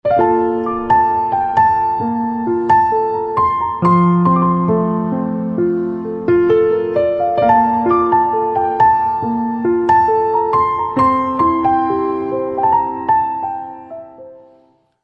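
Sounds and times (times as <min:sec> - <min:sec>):
instrumental piano music ringtone: 0:00.0 - 0:14.5.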